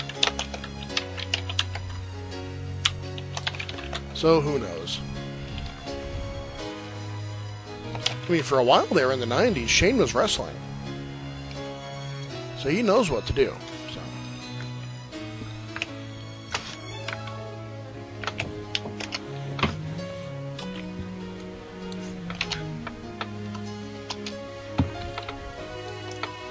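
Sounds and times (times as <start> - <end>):
typing on a computer keyboard: 0.0 - 1.8, 2.8 - 4.0
steady tonal background: 0.0 - 26.5
speech: 4.2 - 5.1, 8.3 - 10.7, 12.6 - 13.7.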